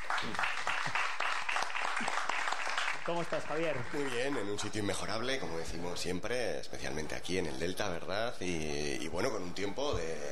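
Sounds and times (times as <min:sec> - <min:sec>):
crowd applauding in a river delta: 0:00.0 - 0:05.1
speech: 0:03.1 - 0:10.2.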